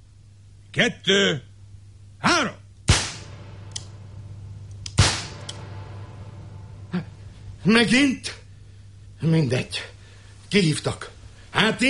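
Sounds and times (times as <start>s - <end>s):
low steady hum: 0.0s - 11.8s
speech: 0.7s - 1.5s, 7.6s - 8.4s, 9.2s - 9.9s, 10.5s - 11.8s
pistol shot fired in a duel: 2.9s - 6.3s.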